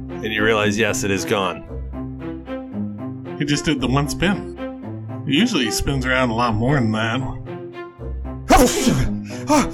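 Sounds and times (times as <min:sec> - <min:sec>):
speech: 0:00.2 - 0:01.7, 0:03.4 - 0:04.5, 0:05.3 - 0:07.4, 0:08.6 - 0:09.7
player sneezing: 0:08.5 - 0:09.7.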